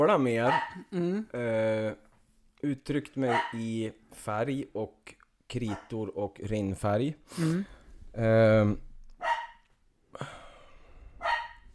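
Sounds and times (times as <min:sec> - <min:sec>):
speech: 0:00.0 - 0:02.0, 0:02.6 - 0:08.9, 0:10.2 - 0:10.4
dog barking: 0:00.4 - 0:00.8, 0:03.3 - 0:03.6, 0:05.6 - 0:06.0, 0:09.2 - 0:09.7, 0:11.2 - 0:11.7.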